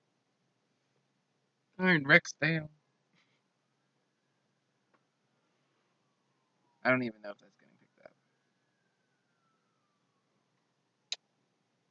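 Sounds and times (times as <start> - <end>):
speech: 1.8 - 2.8, 6.8 - 7.6
fire truck siren passing outside: 3.6 - 11.0.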